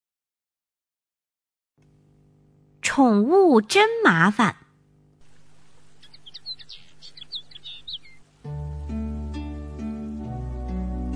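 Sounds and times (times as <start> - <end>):
speech: 2.9 - 4.6
sparrow chirping: 5.3 - 8.4.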